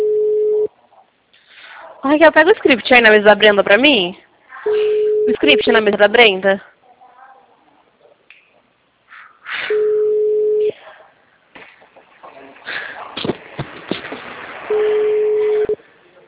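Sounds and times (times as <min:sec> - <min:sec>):
telephone ringback tone on an outgoing call: 0:00.0 - 0:00.7, 0:04.7 - 0:05.8, 0:09.7 - 0:10.7, 0:14.7 - 0:15.8
speech: 0:02.0 - 0:06.7.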